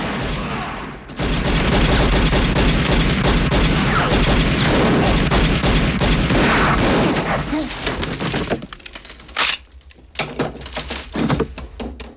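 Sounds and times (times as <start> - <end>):
machine gun fire in a film scene: 0.0 - 8.5.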